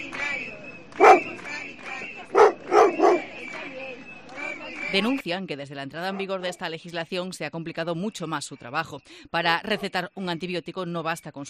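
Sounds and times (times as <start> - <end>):
steady murmur of a street protest crowd: 0.0 - 5.1
dog barking at a street protest: 1.0 - 1.4, 2.3 - 3.3, 9.7 - 9.9
speech: 4.9 - 11.4.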